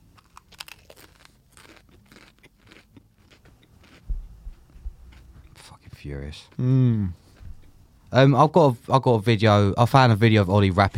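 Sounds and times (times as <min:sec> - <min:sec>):
person biting into and chewing crunchy food: 0:00.0 - 0:07.8
speech: 0:06.0 - 0:07.2, 0:08.1 - 0:10.9.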